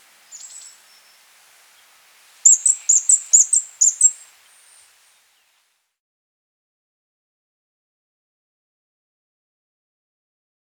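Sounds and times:
Fire-breasted Flowerpecker singing high thin notes: 0.0 - 5.5.

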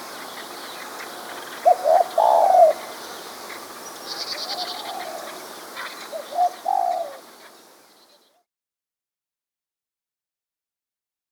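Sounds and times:
spotted dove coo: 0.0 - 7.6.

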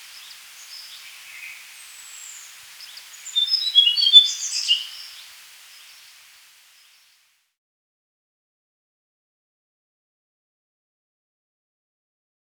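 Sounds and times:
Tickell's Blue Flycatcher song: 0.0 - 6.2.

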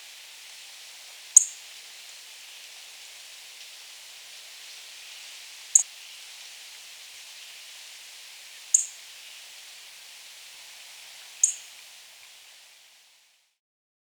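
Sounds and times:
steady hiss: 0.0 - 13.6
little bunting giving sharp very high ticking calls: 1.2 - 2.0, 8.6 - 9.2, 11.1 - 12.0.

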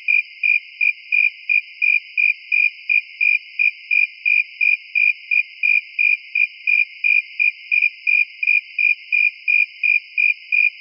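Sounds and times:
cricket chirps: 0.0 - 10.7.

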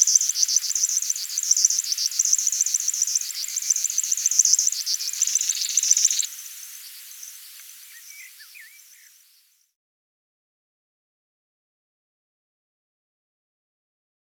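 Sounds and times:
River warbler buzzing song: 0.0 - 9.7
faint bird chirps: 0.0 - 9.8.

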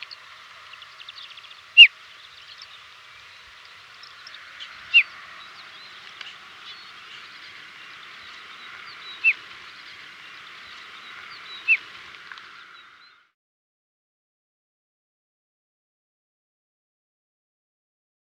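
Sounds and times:
desert lark short call notes: 0.0 - 13.2.

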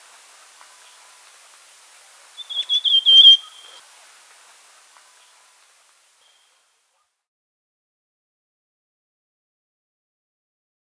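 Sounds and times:
Rufous Sibia giving a wavering warbled whistled phrase: 2.4 - 3.8.

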